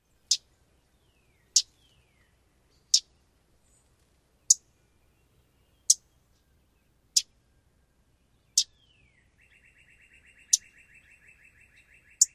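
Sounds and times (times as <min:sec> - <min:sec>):
Common Yellowthroat tschat and teek calls: 0:01.4 - 0:01.8, 0:02.8 - 0:03.1, 0:04.5 - 0:04.7, 0:05.8 - 0:06.1, 0:08.5 - 0:08.8, 0:09.4 - 0:12.3.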